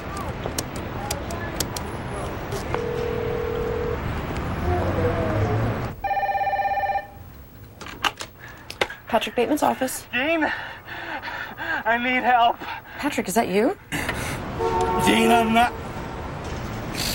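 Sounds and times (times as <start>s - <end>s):
noisy outdoor street ambience: 0.0s - 17.1s
public telephone handset buzzing tone: 2.8s - 4.0s, 6.0s - 7.2s
speech: 9.2s - 10.8s, 11.9s - 13.9s, 15.1s - 15.8s.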